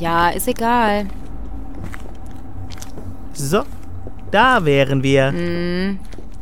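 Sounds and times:
speech: 0.0s - 1.2s, 3.4s - 6.1s
car engine rumbling on the move: 0.0s - 6.4s
continuous road noise: 0.0s - 6.4s.

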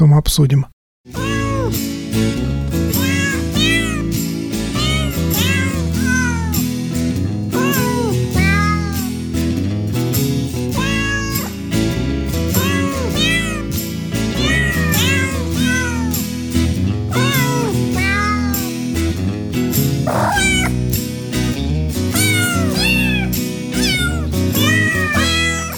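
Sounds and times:
speech: 0.0s - 2.4s
real cat meows pitched into a Christmas melody: 1.1s - 1.8s, 3.0s - 4.2s, 4.8s - 6.6s, 7.6s - 9.2s, 10.7s - 11.6s, 12.6s - 13.8s, 14.4s - 16.1s, 17.2s - 18.7s, 20.1s - 20.8s, 22.1s - 25.7s
steady musical backing: 1.1s - 25.7s.

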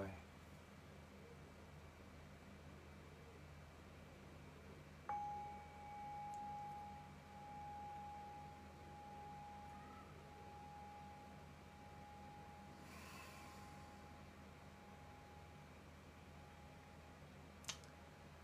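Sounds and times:
steady low hiss: 0.0s - 18.4s
meditation bell struck and ringing: 5.1s - 15.7s.

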